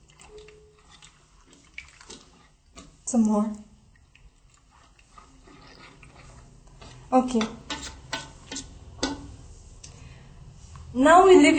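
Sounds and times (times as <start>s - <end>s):
water pouring into a bowl of semolina flour mixture: 0.0s - 6.7s
speech: 3.1s - 3.7s, 7.2s - 7.6s, 11.0s - 11.5s.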